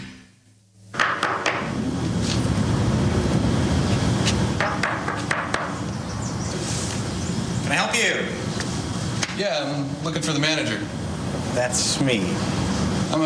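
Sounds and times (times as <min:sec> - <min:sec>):
loud steady rushing noise: 0:01.6 - 0:09.6, 0:10.6 - 0:13.2
knocking on an apartment door: 0:04.6 - 0:05.7
speech: 0:09.4 - 0:11.0, 0:11.6 - 0:12.6.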